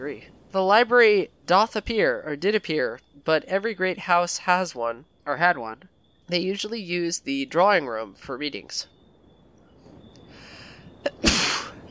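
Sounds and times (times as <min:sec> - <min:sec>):
speech: 0:00.0 - 0:08.9
loud sneeze: 0:11.1 - 0:11.8.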